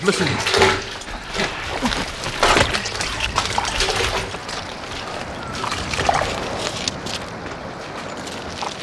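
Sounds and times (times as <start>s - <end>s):
speech: 0.0s - 2.0s
two people wading through deep water toward a rock: 0.0s - 8.8s.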